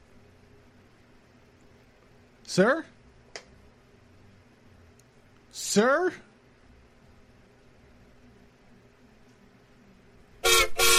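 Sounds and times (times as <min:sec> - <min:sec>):
speech: 0:02.5 - 0:02.9, 0:05.8 - 0:06.3
passing train horn blasts: 0:10.4 - 0:10.9.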